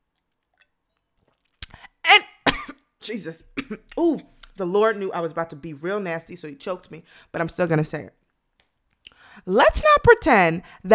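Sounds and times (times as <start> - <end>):
sipping a drink: 0.1 - 2.9
swallowing: 0.4 - 2.0
speech: 3.1 - 8.2, 9.4 - 10.9.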